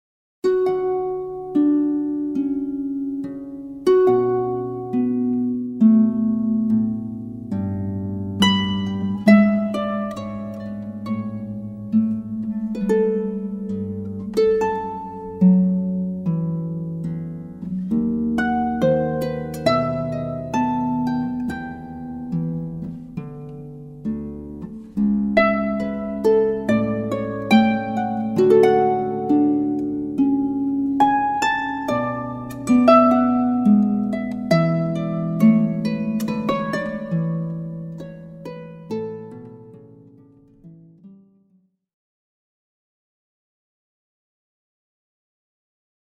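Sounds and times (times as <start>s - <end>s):
harpist playing harp: 0.4s - 41.2s.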